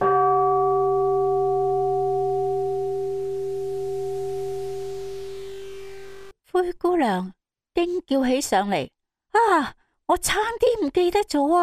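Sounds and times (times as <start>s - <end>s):
single deep heavy clock bell striking midnight: 0.0s - 5.4s
speech: 6.7s - 11.6s.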